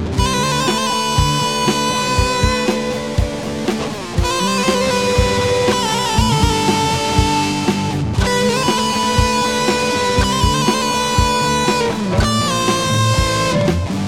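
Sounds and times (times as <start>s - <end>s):
trill played with a slide: 0.2s - 14.0s.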